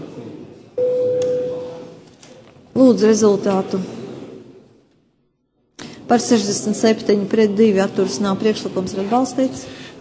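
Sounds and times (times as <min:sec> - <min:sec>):
faint murmur of voices: 0:00.0 - 0:09.9
parliament voting bell electronic tone: 0:00.8 - 0:02.0
speech: 0:02.8 - 0:04.0, 0:06.1 - 0:09.8.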